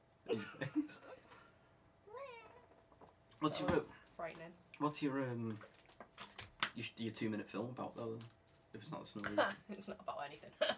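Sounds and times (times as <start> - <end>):
speech: 0.3 - 1.2, 3.4 - 5.8, 6.8 - 10.7
cat meowing: 2.1 - 2.7.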